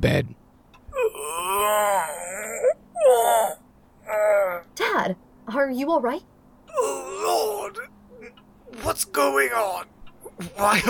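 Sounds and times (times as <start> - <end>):
speech: 0.0 - 2.2, 5.0 - 7.9, 8.7 - 10.8
man groaning as he sits up in bed: 1.0 - 4.6, 6.7 - 8.3.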